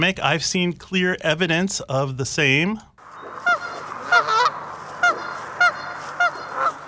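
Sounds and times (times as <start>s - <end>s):
speech: 0.0s - 2.9s
low steady noise: 0.0s - 6.8s
Canada geese honking: 3.1s - 6.8s.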